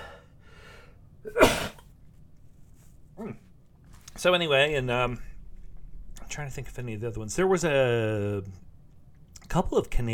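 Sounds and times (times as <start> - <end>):
person sneezing: 1.3 - 1.9
speech: 4.2 - 5.3, 6.3 - 8.6, 9.5 - 10.1.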